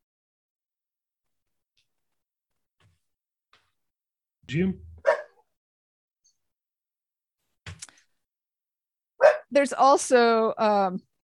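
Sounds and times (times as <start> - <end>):
speech: 4.5 - 4.9, 9.6 - 11.1
dog barking: 5.0 - 5.4, 9.2 - 9.5.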